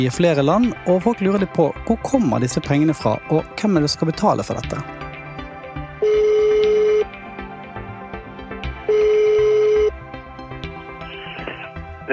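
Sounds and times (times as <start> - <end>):
speech: 0.0 - 5.0
telephone ringback tone as a call is placed: 6.0 - 7.2, 8.8 - 10.0.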